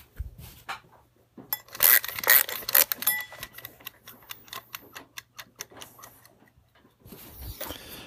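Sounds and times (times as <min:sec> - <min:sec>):
mechanical kitchen timer ratcheting clicks while being wound up: 0:01.5 - 0:06.6.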